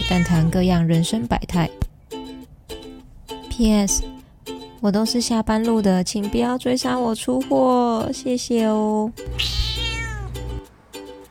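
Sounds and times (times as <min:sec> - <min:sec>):
cat meowing: 0:00.0 - 0:00.5, 0:09.2 - 0:10.6
speech: 0:00.1 - 0:01.9, 0:03.6 - 0:04.1, 0:04.8 - 0:09.6.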